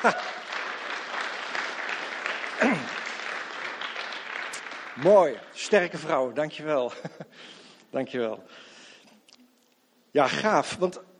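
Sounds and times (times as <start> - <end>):
speech: 0.0 - 0.3, 5.0 - 8.7, 10.1 - 11.1
audience applause: 0.0 - 6.4.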